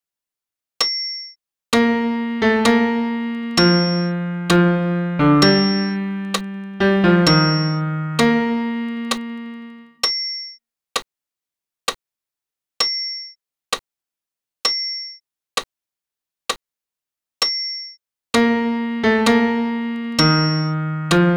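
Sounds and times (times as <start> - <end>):
solo low piano: 1.7 - 9.9, 18.3 - 21.3.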